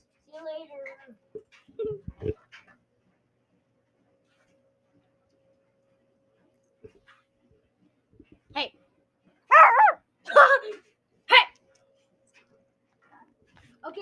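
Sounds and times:
dog barking and whimpering: 9.5s - 10.6s.

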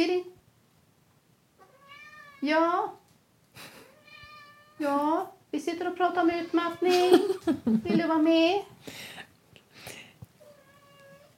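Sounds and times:
cat meowing: 1.6s - 2.5s, 3.9s - 4.9s, 6.3s - 7.1s, 10.4s - 11.3s
speech: 2.4s - 3.0s, 4.8s - 9.1s.

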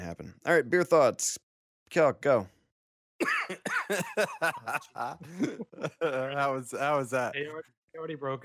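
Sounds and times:
speech: 0.1s - 2.6s, 3.2s - 8.4s
person coughing: 3.2s - 4.5s
laughter: 3.2s - 7.2s.

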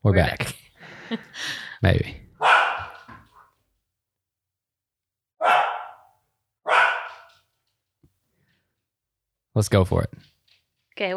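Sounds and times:
speech: 0.0s - 2.2s, 9.6s - 10.3s, 11.0s - 11.1s
dogs barking at other dogs passing along the street: 2.4s - 3.5s, 5.4s - 7.4s.

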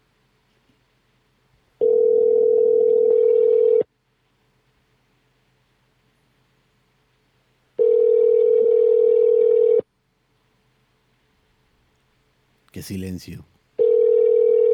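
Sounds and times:
ringback tone of an outgoing telephone call: 1.8s - 3.8s, 7.8s - 9.8s, 13.8s - 14.7s
speech: 12.8s - 13.6s.

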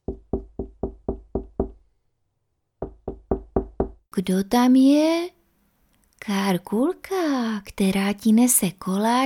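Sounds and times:
firm knocking on a wooden door: 0.0s - 1.8s, 2.8s - 4.0s
speech: 4.2s - 5.4s, 6.2s - 9.2s.

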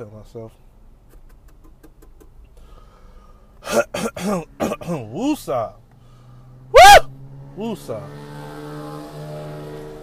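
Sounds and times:
speech: 0.0s - 0.7s, 3.7s - 5.8s, 7.6s - 8.3s
motorcycle engine droning loudly outside: 6.4s - 10.0s.

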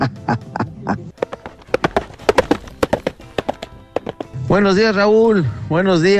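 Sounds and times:
speech: 0.0s - 1.0s, 4.5s - 6.1s
horse hooves trotting on a hard surface: 1.1s - 4.6s.

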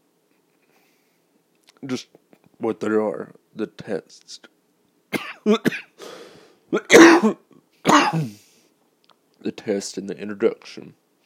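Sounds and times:
speech: 1.8s - 4.5s, 5.4s - 5.9s, 6.7s - 8.4s, 9.4s - 11.0s
person coughing: 5.1s - 6.1s, 6.7s - 8.4s
throat clearing: 6.8s - 8.4s.

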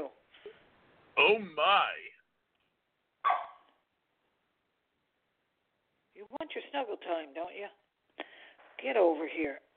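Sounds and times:
speech: 1.2s - 2.1s, 6.4s - 7.8s, 8.8s - 9.7s
dog barking: 3.2s - 3.8s.

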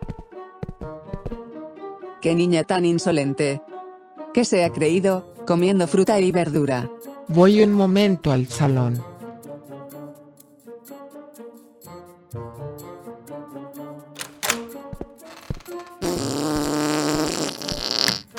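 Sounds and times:
speech: 2.2s - 3.7s, 4.4s - 9.1s
squelchy sputtering farting noises: 16.0s - 18.3s.

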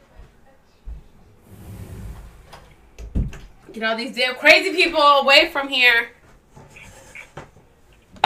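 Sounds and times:
door being closed: 1.4s - 3.6s
speech: 3.7s - 6.2s.

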